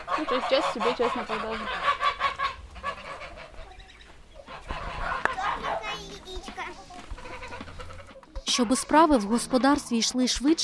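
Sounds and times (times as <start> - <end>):
flock of geese raised for meat honking: 0.0 - 10.0
speech: 0.2 - 1.9, 8.6 - 10.6.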